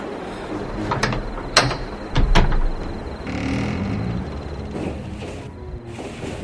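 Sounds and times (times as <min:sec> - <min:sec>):
heavy door grinding and creaking open: 0:00.2 - 0:06.1
mechanical clanks and rattling of a heavy door: 0:00.4 - 0:05.5.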